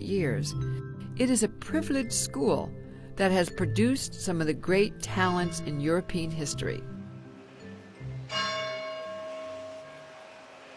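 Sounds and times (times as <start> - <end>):
speech: 0.1 - 6.9
large bell ringing across the campus of Trinity College Dublin in Ireland: 5.2 - 6.9, 8.3 - 10.6.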